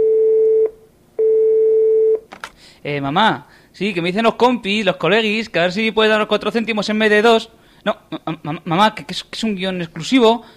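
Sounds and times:
telephone ringing tone while placing a call: 0:00.0 - 0:02.2
speech: 0:02.8 - 0:10.5.

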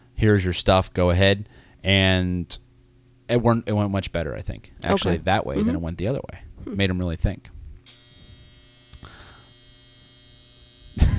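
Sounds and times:
speech: 0:00.2 - 0:02.6, 0:03.3 - 0:07.5
clothes dryer humming: 0:04.9 - 0:05.9.

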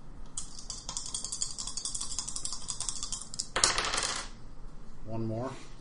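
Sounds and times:
dice rolling on a hard tabletop during a tabletop game: 0:00.4 - 0:04.4
speech: 0:05.1 - 0:05.7.

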